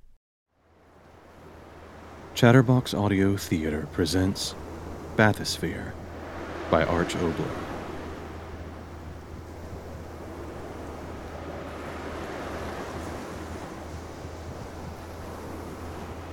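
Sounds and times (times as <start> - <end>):
gentle sea waves: 0.5 - 16.3
light breeze: 0.5 - 16.3
speech: 2.4 - 4.6, 5.2 - 6.0, 6.7 - 7.7.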